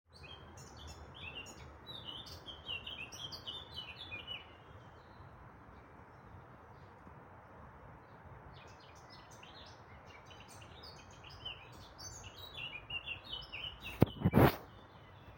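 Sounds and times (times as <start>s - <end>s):
dawn chorus birdsong before sunrise: 0.1s - 15.3s.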